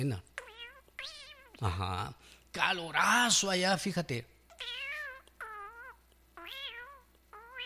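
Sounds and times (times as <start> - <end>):
speech: 0.0 - 0.3, 1.0 - 4.8
cat meowing: 0.4 - 1.6, 4.5 - 7.6.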